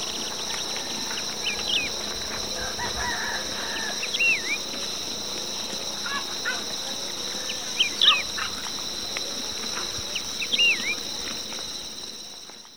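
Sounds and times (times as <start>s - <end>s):
steady high insect drone in Ecuador: 0.0s - 12.7s
Wedge-tailed Grass-Finch calls in Ecuador: 1.4s - 4.6s, 7.8s - 8.6s, 10.1s - 11.0s.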